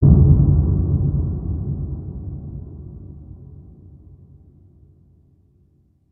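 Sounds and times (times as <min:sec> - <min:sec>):
ground rumbling in a cave: 0:00.0 - 0:04.4.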